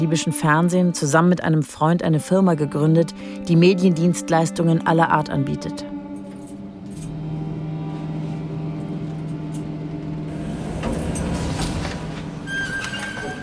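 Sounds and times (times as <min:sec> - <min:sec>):
speech: 0:00.0 - 0:06.0
car driving with steady engine drone: 0:06.8 - 0:12.9.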